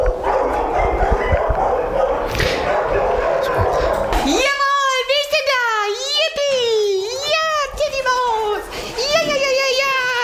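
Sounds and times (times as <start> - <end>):
dog barking and yipping excitedly in welcome: 0.0 - 4.6
steady room noise: 0.0 - 10.2
people talking: 2.9 - 10.2.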